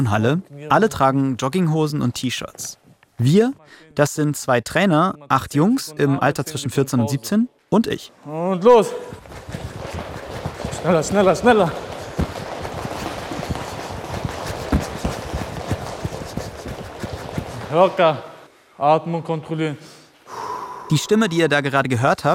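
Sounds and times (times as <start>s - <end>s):
speech: 0.0s - 10.0s, 10.8s - 11.9s, 17.7s - 19.9s, 20.9s - 22.3s
many feet running in place on a hard gym floor during boxing training: 8.8s - 18.2s
heavy breathy panting after exercise: 9.0s - 18.0s.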